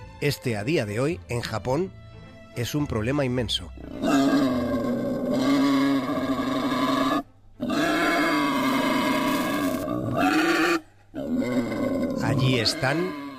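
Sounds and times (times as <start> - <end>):
speech: 0.2 - 2.0, 2.6 - 4.4, 12.5 - 13.2
wild boars in Japan grunting and growling threateningly: 3.8 - 13.3.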